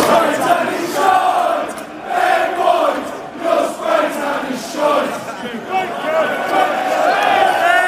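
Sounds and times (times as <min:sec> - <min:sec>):
large crowd of football fans singing a rhythmic terrace chant: 0:00.0 - 0:07.7.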